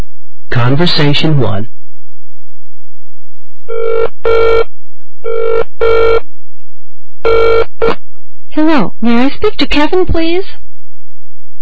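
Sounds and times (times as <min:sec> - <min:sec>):
speech: 0:00.5 - 0:01.8, 0:08.6 - 0:10.6
telephone ringing: 0:03.7 - 0:04.7, 0:05.3 - 0:06.2, 0:07.2 - 0:08.0.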